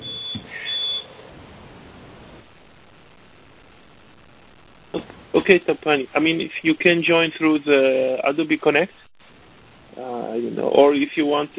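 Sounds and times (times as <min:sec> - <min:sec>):
high-pitched electronic beep: 0:00.0 - 0:01.1
faint background hum: 0:00.0 - 0:11.5
speech: 0:05.4 - 0:09.1, 0:10.0 - 0:11.5.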